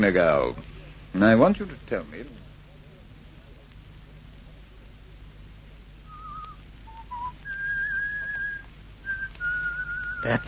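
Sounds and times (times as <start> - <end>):
speech: 0.0 - 2.4, 10.2 - 10.4
faint hiss: 0.0 - 10.4
man whistling a short wandering tune: 6.1 - 10.4.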